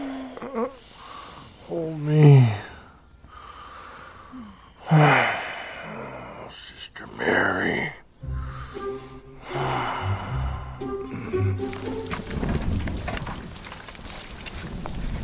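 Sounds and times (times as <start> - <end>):
heavy breathing: 0.0 - 1.7, 2.4 - 6.5, 8.2 - 11.7
speech: 0.5 - 1.0, 1.7 - 2.6
low tonal sound: 8.2 - 13.1
steady rain: 10.8 - 15.2.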